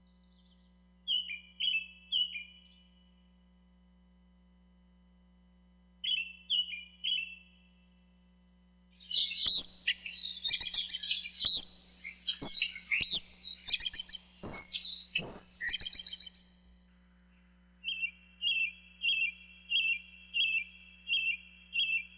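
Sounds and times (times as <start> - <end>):
birds singing: 0.0 - 3.0, 6.0 - 7.5, 9.0 - 16.5, 17.3 - 22.1.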